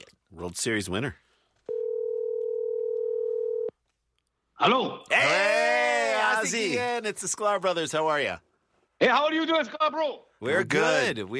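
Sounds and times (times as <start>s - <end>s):
speech: 0.3s - 1.2s, 4.6s - 5.6s, 6.4s - 11.3s
telephone dial tone: 1.7s - 3.7s.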